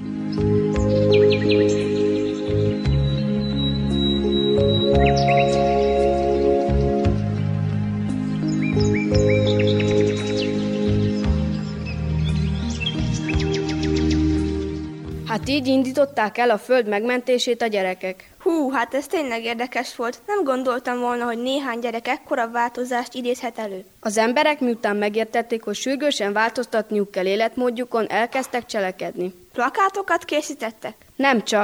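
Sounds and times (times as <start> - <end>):
bright birdsong with chirps and trills: 0.0 - 16.2
warm musical backdrop of sustained low tones: 0.0 - 16.2
speech: 15.6 - 31.6.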